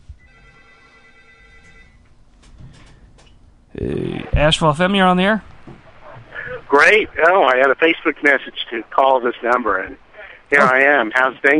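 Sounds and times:
telephone ringing: 0.2 - 2.1
speech: 3.8 - 5.5, 6.7 - 11.5.

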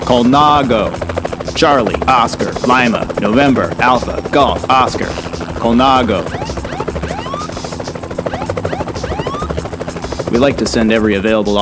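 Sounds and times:
helicopter with rapid rotor chop: 0.0 - 11.6
speech: 0.1 - 7.0, 10.3 - 11.6
rising whistling tones: 6.2 - 9.6.

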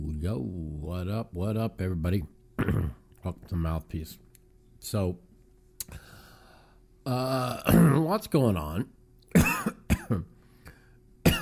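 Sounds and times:
speech: 0.2 - 4.2, 4.8 - 5.3, 7.1 - 10.3
man coughing while eating and talking: 2.6 - 3.1, 7.4 - 8.1, 9.3 - 10.4, 11.2 - 11.4.

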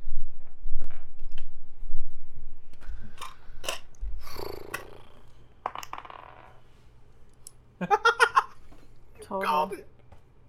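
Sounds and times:
dice rolling on a hard tabletop: 4.6 - 6.7
speech: 7.8 - 8.0, 9.3 - 9.9.

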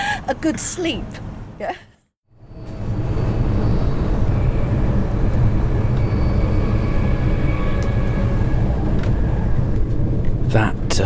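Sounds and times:
speech: 0.3 - 1.9, 10.5 - 11.0
moving train rumbling along the track: 2.3 - 11.0.

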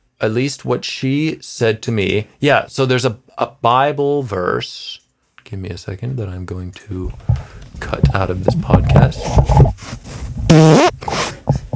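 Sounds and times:
speech: 0.2 - 10.9
faint shuffling: 5.2 - 10.5
loud buzzy fart with rising pitch: 10.5 - 11.7.

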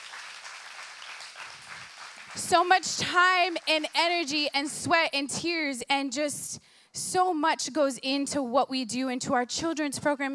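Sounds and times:
crowd applause: 0.0 - 4.4
speech: 2.3 - 10.3.

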